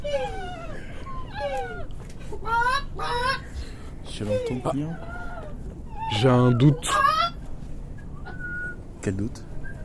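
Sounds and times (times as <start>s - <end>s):
hen clucking and squawking: 0.0s - 3.6s, 4.2s - 7.4s
speech: 4.2s - 5.2s, 6.1s - 7.0s, 9.0s - 9.5s.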